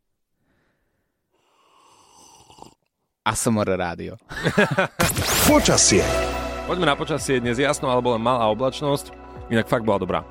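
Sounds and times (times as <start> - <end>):
person slurping sips of hot coffee: 1.4 - 2.9
speech: 3.2 - 10.2
laughter: 4.3 - 5.1.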